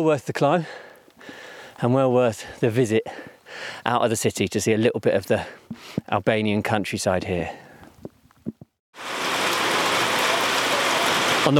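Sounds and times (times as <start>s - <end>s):
speech: 0.0s - 7.6s
heavy rain pouring down: 9.0s - 11.5s.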